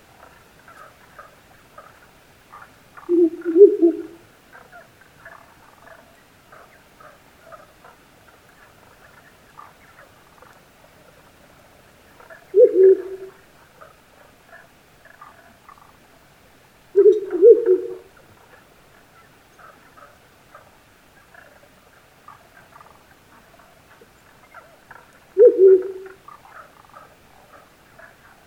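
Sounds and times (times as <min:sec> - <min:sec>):
fainter higher chattering owl calls in a highland forest: 0:02.5 - 0:06.8, 0:12.2 - 0:15.9, 0:17.0 - 0:18.2, 0:24.0 - 0:28.3
male owl hooting deeply in a highland forest: 0:02.5 - 0:06.8, 0:12.2 - 0:13.5, 0:16.9 - 0:18.2, 0:23.6 - 0:28.2.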